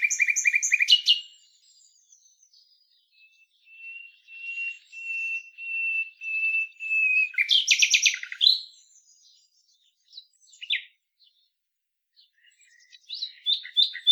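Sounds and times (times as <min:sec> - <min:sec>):
common nightingale Luscinia megarhynchos song: 0:00.0 - 0:14.1.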